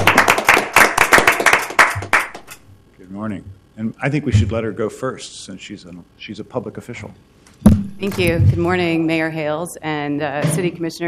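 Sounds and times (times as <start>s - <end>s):
group applauding at a city council meeting: 0.0s - 2.5s
speech: 3.2s - 11.0s.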